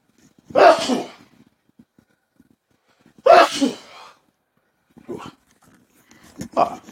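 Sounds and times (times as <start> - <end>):
person sneezing slightly off-mic in a dusty studio: 0.5 - 1.2, 3.2 - 4.2.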